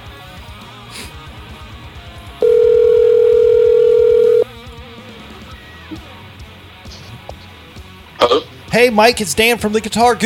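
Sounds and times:
telephone ringback tone of an outgoing call through a soundstage phone system: 0:02.4 - 0:04.5
speech: 0:08.7 - 0:10.2.

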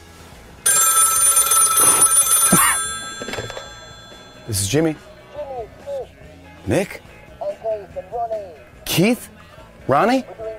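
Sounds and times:
telephone bell ringing: 0:00.7 - 0:05.1
speech: 0:04.5 - 0:05.1, 0:06.7 - 0:07.1, 0:09.0 - 0:09.3, 0:09.9 - 0:10.4.

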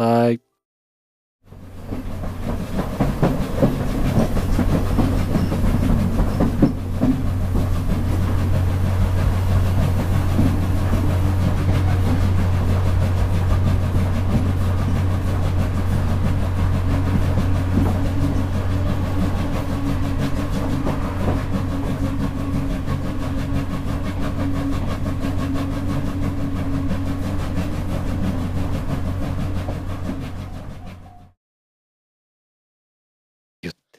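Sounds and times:
speech: 0:00.0 - 0:00.5
rhythmic clattering of train wheels on rails: 0:01.5 - 0:31.2
steam locomotive train rumbling across a railway bridge: 0:01.5 - 0:31.4.

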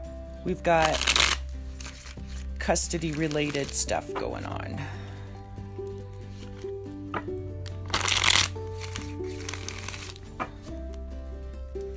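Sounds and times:
soft steady music: 0:00.0 - 0:11.9
speech: 0:00.4 - 0:01.2, 0:02.6 - 0:05.0
shuffling a deck of tarot cards for a tarot reading: 0:00.8 - 0:03.9, 0:07.7 - 0:11.0.

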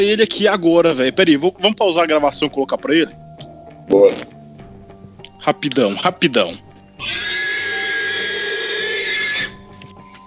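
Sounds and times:
speech: 0:00.0 - 0:03.2, 0:03.9 - 0:04.3, 0:05.4 - 0:07.4
pig squealing shrilly: 0:07.0 - 0:09.9.

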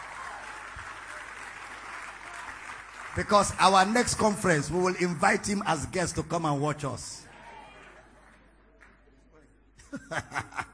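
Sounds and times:
audience applauding a man: 0:00.0 - 0:05.0
speech: 0:03.2 - 0:07.3
laughter: 0:09.8 - 0:10.7.

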